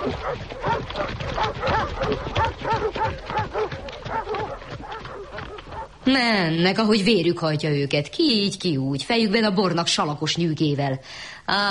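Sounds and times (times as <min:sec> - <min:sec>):
speech: 0:00.0 - 0:04.6, 0:06.1 - 0:11.6
pack of hunting dogs barking and yipping: 0:00.0 - 0:06.0.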